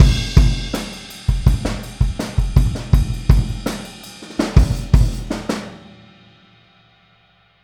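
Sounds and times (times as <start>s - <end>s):
boogaloo outro kick drum: 0.0s - 3.6s.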